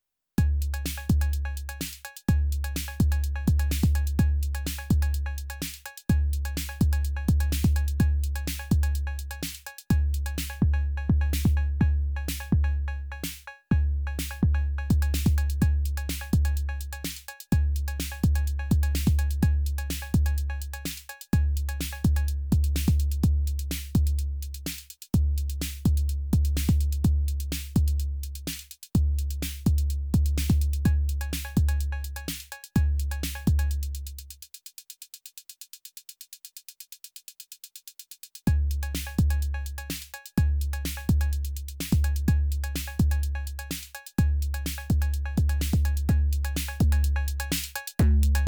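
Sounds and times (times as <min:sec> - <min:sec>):
drum machine impact: 0:00.4 - 0:12.7, 0:14.2 - 0:24.8, 0:25.4 - 0:33.8, 0:38.5 - 0:48.4.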